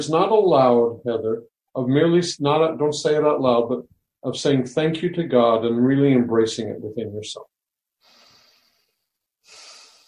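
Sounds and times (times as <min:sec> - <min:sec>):
speech: 0:00.0 - 0:07.5
person breathing: 0:08.0 - 0:10.0.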